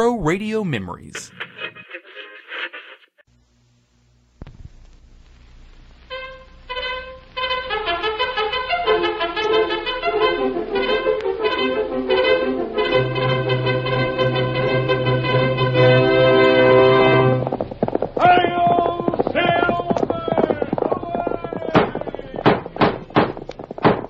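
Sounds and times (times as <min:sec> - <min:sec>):
speech: 0:00.0 - 0:01.4
long sustained brassy tone: 0:06.1 - 0:17.5
horse hoofbeats galloping: 0:13.2 - 0:24.0.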